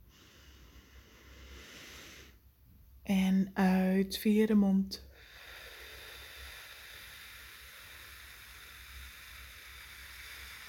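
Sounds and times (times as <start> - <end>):
deep inhale through the nose: 0.0 - 2.5, 5.0 - 10.6
speech: 3.4 - 5.1.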